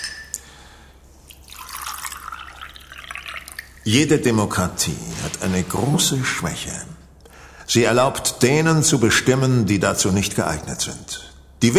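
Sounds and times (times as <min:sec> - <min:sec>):
water pouring into a glass: 0:01.3 - 0:03.9
speech: 0:03.9 - 0:07.0, 0:07.7 - 0:11.7.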